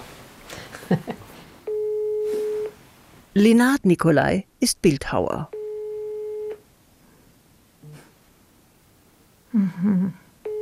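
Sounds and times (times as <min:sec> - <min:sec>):
speech: 0:00.9 - 0:01.2, 0:03.4 - 0:05.6, 0:09.6 - 0:10.2
telephone line tone while a call is being placed: 0:01.6 - 0:02.8, 0:05.5 - 0:06.6, 0:10.4 - 0:10.6.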